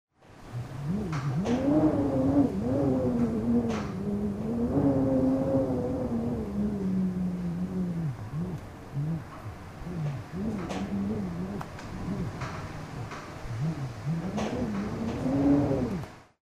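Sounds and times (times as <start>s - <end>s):
slow wind moaning: 0.3s - 16.4s.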